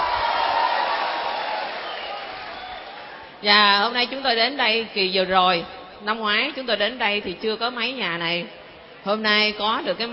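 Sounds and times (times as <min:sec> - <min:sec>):
crowd applauding: 0:00.0 - 0:03.4
speech: 0:03.4 - 0:10.1.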